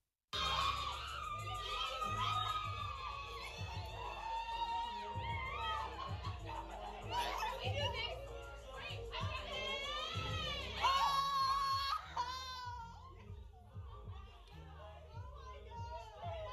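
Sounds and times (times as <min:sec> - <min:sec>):
group of voices yelling a chant-like sorority call: 0:00.4 - 0:13.0
laughter: 0:00.4 - 0:16.5.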